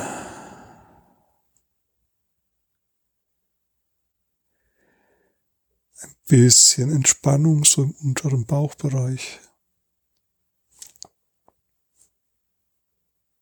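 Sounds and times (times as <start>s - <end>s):
breathy yawn: 0.0s - 1.1s
sharp breath: 0.0s - 1.2s, 4.6s - 5.4s
voiced exhale: 0.0s - 1.2s
speech: 6.0s - 9.5s.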